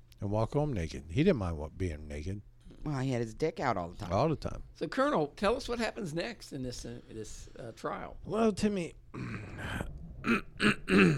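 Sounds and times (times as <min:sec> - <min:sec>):
speech: 0:00.2 - 0:11.1
man clearing his throat: 0:09.1 - 0:11.1.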